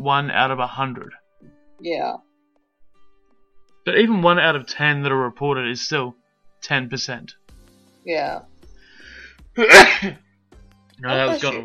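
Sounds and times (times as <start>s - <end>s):
speech: 0.0s - 1.2s, 1.8s - 2.3s, 3.8s - 7.4s, 8.0s - 8.5s, 9.6s - 10.2s, 11.0s - 11.6s
person sneezing: 9.6s - 10.2s.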